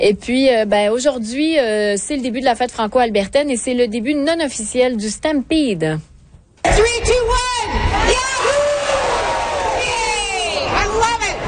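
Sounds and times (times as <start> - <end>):
speech: 0.0 - 8.3
crowd cheering at a pancake breakfast in downtown Calgary: 6.7 - 11.4.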